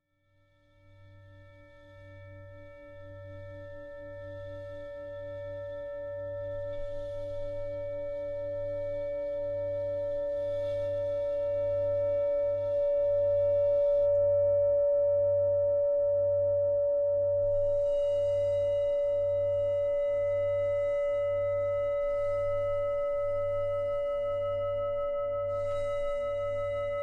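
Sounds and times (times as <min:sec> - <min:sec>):
singing bowl: 0:01.0 - 0:27.0.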